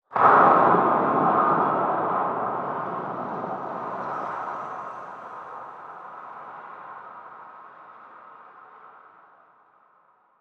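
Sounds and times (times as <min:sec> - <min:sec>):
mega shipyard metal ambience: 0:00.2 - 0:06.8.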